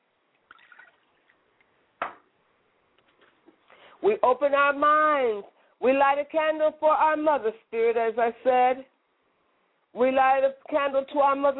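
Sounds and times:
liquid poured onto the ground as libation: 0.5s - 1.2s
speech: 4.0s - 8.9s, 10.0s - 11.5s.

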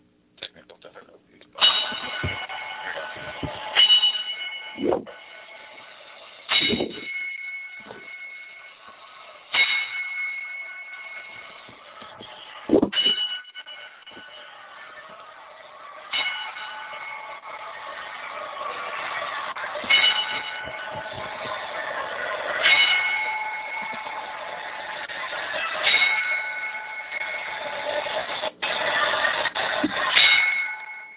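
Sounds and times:
bell struck as a salute for a man who recently died: 1.6s - 28.5s, 29.6s - 31.1s.

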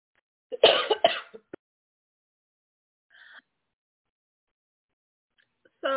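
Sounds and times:
person sick with sinus infection and COVID coughing: 0.6s - 1.5s.

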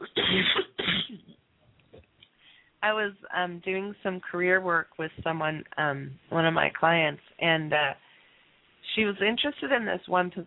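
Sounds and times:
person coughing: 0.0s - 1.3s
speech: 0.3s - 0.6s, 2.8s - 8.0s, 9.0s - 10.4s
faint breathing: 2.3s - 2.8s, 8.0s - 8.7s.

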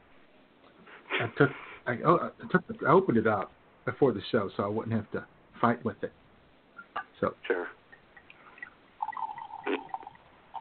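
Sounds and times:
speech: 1.2s - 6.2s, 7.2s - 7.8s
thin stream of wine trickling into a glass: 7.9s - 10.5s.

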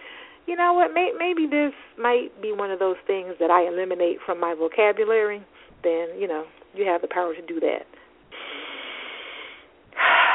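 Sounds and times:
speech: 0.5s - 8.4s
deep breathing: 8.3s - 10.3s.

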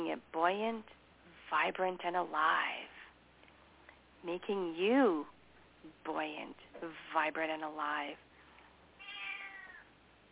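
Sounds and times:
quiet hiss: 0.0s - 10.3s
speech: 0.2s - 2.8s, 4.2s - 8.3s
female cat meowing: 9.0s - 9.9s.

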